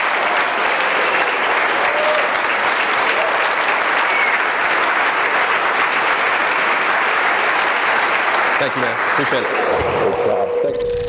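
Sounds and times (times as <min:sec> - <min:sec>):
large audience applause: 0:00.0 - 0:10.4
speech: 0:08.6 - 0:11.0.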